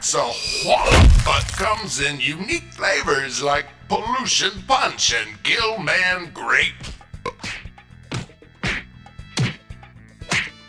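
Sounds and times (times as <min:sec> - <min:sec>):
speech: 0:00.1 - 0:07.0
whacks of a person being hit: 0:00.8 - 0:01.8, 0:09.4 - 0:09.6, 0:10.3 - 0:10.6.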